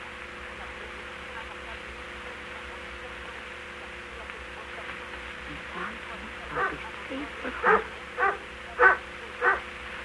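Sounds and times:
steady low hum: 0:00.0 - 0:10.0
dog barking in short yaps: 0:06.5 - 0:06.8, 0:07.6 - 0:09.7.

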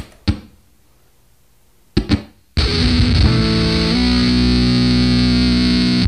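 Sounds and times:
guitar stabs through a heavily gated gas-filled tube distortion pedal: 0:02.0 - 0:06.0.

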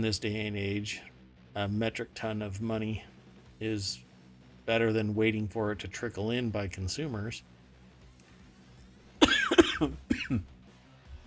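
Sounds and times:
speech: 0:00.0 - 0:04.1, 0:04.7 - 0:07.5, 0:09.8 - 0:10.5
harsh raspy coughs: 0:09.2 - 0:10.5
throat-clearing rasp: 0:09.2 - 0:10.5.

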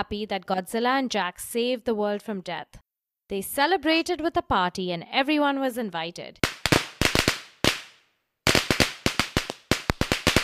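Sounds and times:
speech: 0:00.0 - 0:06.5
firecrackers or fireworks exploding: 0:06.4 - 0:07.9, 0:08.5 - 0:10.4.

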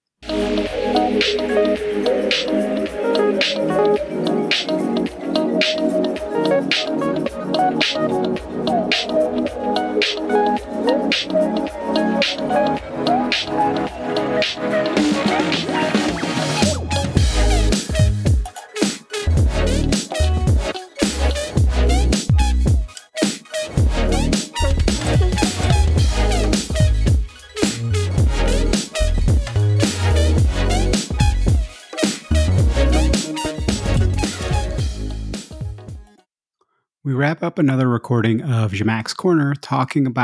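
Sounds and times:
upbeat instrumental music interlude with a steady beat: 0:00.2 - 0:36.2
speech: 0:00.7 - 0:04.8, 0:05.6 - 0:16.8, 0:37.4 - 0:40.2.

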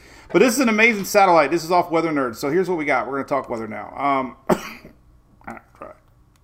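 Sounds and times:
speech: 0:00.3 - 0:04.8
person coughing: 0:04.5 - 0:06.0
throat clearing: 0:04.5 - 0:06.0.

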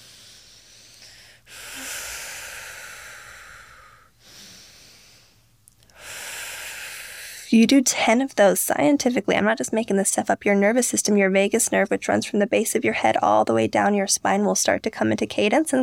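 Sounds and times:
deep rhythmic breathing for a breathing exercise, inhaling through nose, exhaling through mouth: 0:00.0 - 0:07.6
speech: 0:07.5 - 0:15.8.

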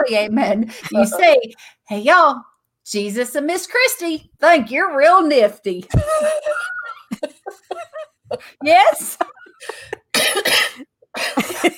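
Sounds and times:
speech: 0:00.0 - 0:11.7
laughter: 0:05.9 - 0:10.2, 0:11.2 - 0:11.7
person coughing harshly: 0:06.0 - 0:07.1, 0:09.2 - 0:11.7.

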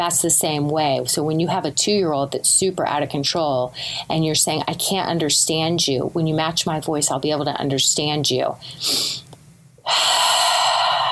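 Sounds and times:
speech: 0:00.0 - 0:09.2, 0:09.9 - 0:10.5
exaggerated deep breathing as a calming technique: 0:09.8 - 0:11.1.

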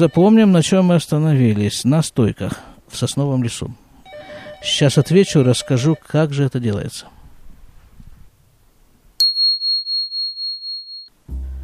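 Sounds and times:
telephone ringing with electronic tone: 0:00.0 - 0:00.7, 0:04.0 - 0:06.4
speech: 0:00.0 - 0:03.8, 0:04.6 - 0:07.2.

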